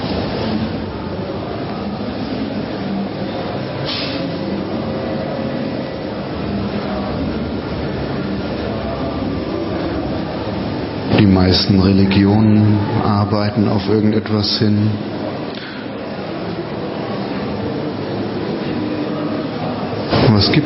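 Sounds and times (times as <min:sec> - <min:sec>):
subway train rumbling: 0:00.0 - 0:20.6
brief hiss: 0:03.8 - 0:04.4
speech: 0:11.4 - 0:15.1, 0:20.4 - 0:20.6.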